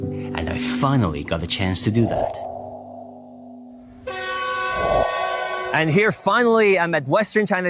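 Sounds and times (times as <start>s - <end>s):
speech: 0.3s - 2.6s, 5.7s - 7.6s
multi-tone train horn blast on the Qinghai-Tibet high-altitude railway: 4.0s - 5.9s.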